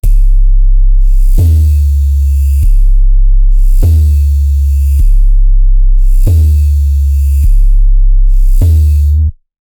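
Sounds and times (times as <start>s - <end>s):
drum machine bass kick in electronic music: 0.0s - 9.4s.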